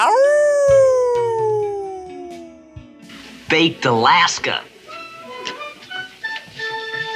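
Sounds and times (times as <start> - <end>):
wolf howling: 0.0 - 3.0
speech: 3.5 - 4.7.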